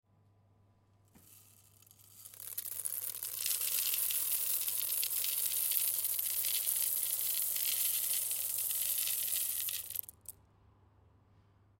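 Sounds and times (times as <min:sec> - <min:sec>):
coffee beans: 0:01.1 - 0:10.3.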